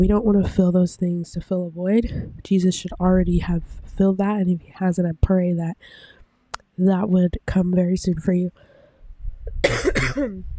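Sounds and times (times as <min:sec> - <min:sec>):
speech: 0:00.0 - 0:06.2, 0:06.8 - 0:08.7, 0:09.6 - 0:10.5
asthmatic cough with wheezy raspy tail: 0:09.6 - 0:10.5.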